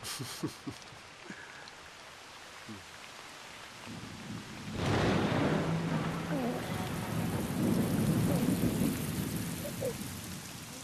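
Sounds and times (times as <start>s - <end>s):
steady rain: 0.0s - 10.8s
deep rumble of thunder: 3.9s - 10.8s.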